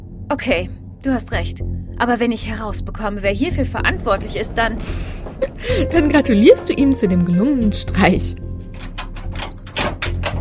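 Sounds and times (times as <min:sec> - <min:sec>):
low rumble: 0:00.1 - 0:08.8
speech: 0:00.3 - 0:08.4
heavy cellar door scraping open: 0:03.6 - 0:05.9.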